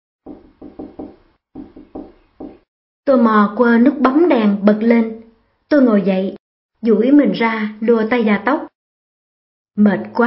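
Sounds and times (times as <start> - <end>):
soft hesitant knocking on a door: 0.3 - 2.7
speech: 3.1 - 8.7, 9.8 - 10.2.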